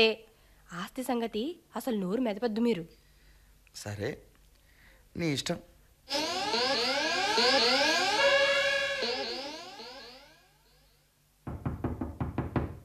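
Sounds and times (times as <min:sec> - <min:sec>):
speech: 0:00.0 - 0:03.0, 0:03.7 - 0:04.3, 0:05.2 - 0:06.8, 0:07.4 - 0:07.9
swirl of sweeping, overlapping musical tones: 0:06.1 - 0:11.0
knocking on a door: 0:11.4 - 0:12.8.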